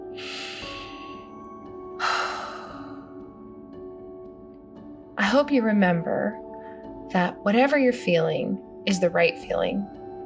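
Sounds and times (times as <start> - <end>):
person taking a big breath in during a calming tapping exercise: 0.0 - 1.3, 2.0 - 3.3
speech: 5.3 - 6.4, 7.1 - 10.0.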